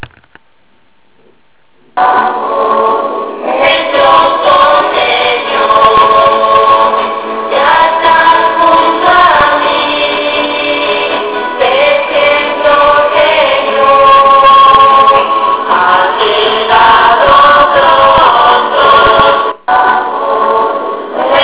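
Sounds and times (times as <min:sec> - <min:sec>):
youth choir singing: 0:02.0 - 0:21.4.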